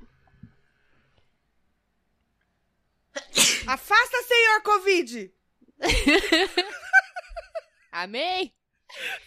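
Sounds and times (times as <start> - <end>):
woman with allergies sneezing: 3.2 - 3.8
speech: 3.7 - 6.8, 8.0 - 9.2
laughter: 5.8 - 7.8.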